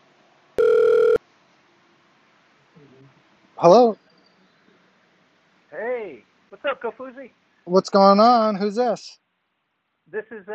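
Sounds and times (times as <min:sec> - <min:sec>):
telephone ringing with an incoming call: 0:00.6 - 0:01.2
speech: 0:03.6 - 0:04.0, 0:06.9 - 0:09.2, 0:10.1 - 0:10.5.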